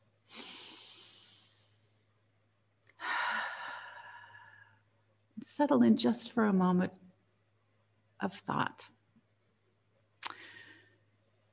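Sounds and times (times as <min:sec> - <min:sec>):
person taking a deep breath: 0:00.3 - 0:01.9, 0:03.0 - 0:04.8, 0:10.3 - 0:11.1
speech: 0:05.4 - 0:07.0, 0:08.2 - 0:09.0.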